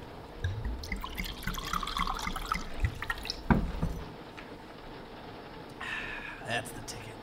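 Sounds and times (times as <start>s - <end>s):
water poured into a glass of whiskey: 0.4s - 4.1s
soft knocks: 3.5s - 4.1s
speech: 6.5s - 7.0s.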